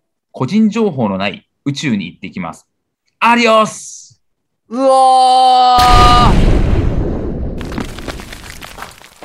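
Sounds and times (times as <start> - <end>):
speech: 0.4 - 6.5
explosion sound effect deep rumbling boom: 5.8 - 9.0
sustained crackle of debris: 5.8 - 9.2.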